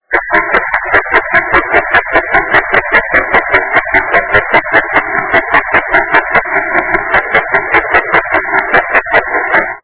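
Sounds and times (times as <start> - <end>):
Nextel mobile phone interference noise: 0.0 - 9.8.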